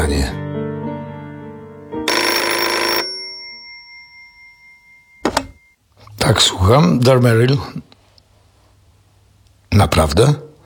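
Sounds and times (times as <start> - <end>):
speech: 0.0 - 0.4, 6.3 - 7.9, 9.8 - 10.4
telephone bell ringing with metallic clatter: 2.1 - 5.8.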